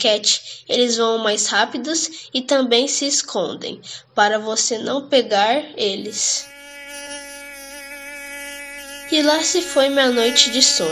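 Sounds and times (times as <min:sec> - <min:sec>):
speech: 0:00.0 - 0:07.1, 0:09.1 - 0:10.9
mosquito buzzing: 0:06.1 - 0:10.9.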